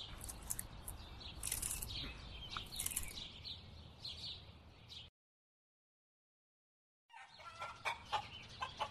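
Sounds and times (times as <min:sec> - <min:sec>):
busy barnyard noise: 0:00.0 - 0:05.1, 0:07.1 - 0:08.8
flock of chickens clucking and squawking at a farm: 0:07.1 - 0:08.8.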